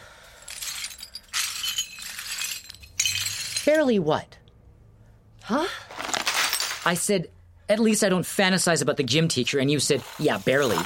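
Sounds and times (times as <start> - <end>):
broken glass shards clinking and scraping while being gathered: 0.4 - 3.8, 6.1 - 6.9
speech: 3.7 - 4.4, 5.5 - 5.9, 6.8 - 10.8.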